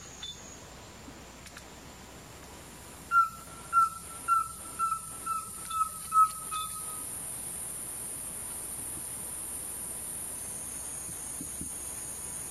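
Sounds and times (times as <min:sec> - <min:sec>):
high insect hiss: 0:00.0 - 0:12.5
corneteiro-da-mata singing whistled notes: 0:03.1 - 0:07.0.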